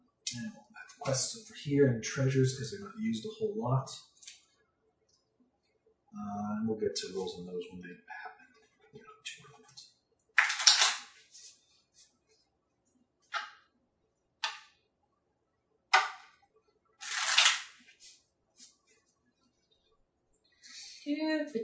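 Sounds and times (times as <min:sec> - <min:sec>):
speech: 0:00.4 - 0:04.1, 0:06.2 - 0:08.2, 0:21.1 - 0:21.6
books being opened and looked through: 0:10.4 - 0:11.4, 0:17.0 - 0:18.9
cards being shuffled: 0:10.4 - 0:11.6, 0:17.0 - 0:18.8.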